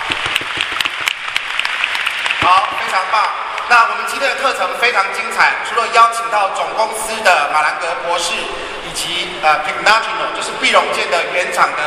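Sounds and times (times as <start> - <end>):
audience applause at a company product seminar in Taiwan: 0.0 - 3.0
speech: 2.4 - 11.8.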